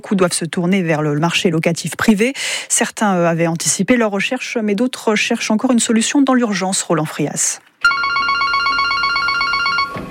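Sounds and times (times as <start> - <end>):
speech: 0.0 - 8.2
telephone ringing with a rapid electronic trill in a city-centre estate agency: 7.8 - 10.0.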